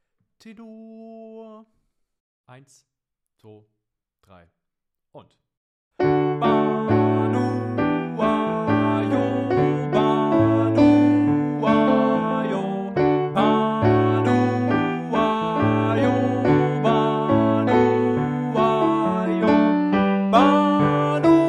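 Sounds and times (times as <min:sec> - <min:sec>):
piano: 0:06.0 - 0:21.4
tenor singing: 0:06.0 - 0:21.4.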